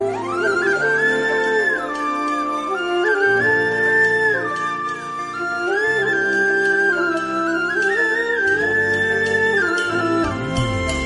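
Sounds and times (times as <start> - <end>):
romantic flute melody: 0.0 - 11.0.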